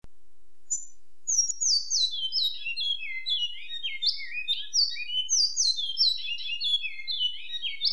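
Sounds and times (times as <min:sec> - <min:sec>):
Great-billed seed finch singing: 0:00.7 - 0:07.9.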